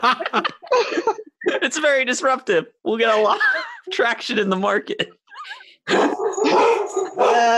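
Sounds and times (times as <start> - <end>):
speech: 0.0 - 0.6, 1.7 - 5.2, 7.2 - 7.5
laughter: 0.0 - 1.8, 3.1 - 7.3
dogs barking: 5.9 - 7.5.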